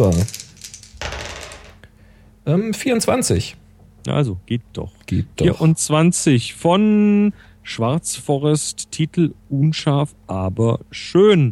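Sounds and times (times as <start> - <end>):
speech: 0.0 - 0.4, 2.4 - 11.5
hundred-sided die rolling across a surface: 0.0 - 1.8.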